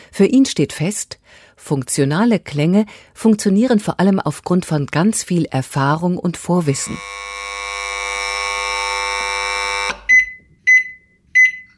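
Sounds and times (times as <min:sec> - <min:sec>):
speech: 0:00.2 - 0:07.5
long electronic tone from a kitchen appliance: 0:06.7 - 0:10.1
short beeps from a kitchen appliance: 0:10.1 - 0:11.7.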